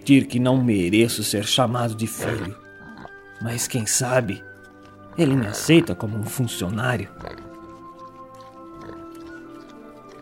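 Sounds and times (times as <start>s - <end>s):
speech: 0.1s - 2.6s, 3.4s - 4.5s, 5.2s - 7.5s
pig grunting and oinking in its pigsty: 2.1s - 3.2s, 5.1s - 6.0s, 7.1s - 9.4s.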